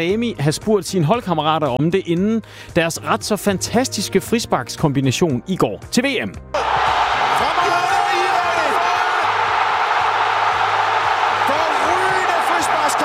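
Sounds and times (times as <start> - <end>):
speech: 0.0 - 6.7
football fans shouting and whooping: 6.6 - 13.0
packed stadium crowd roaring after football goal at the World Cup: 6.6 - 13.0.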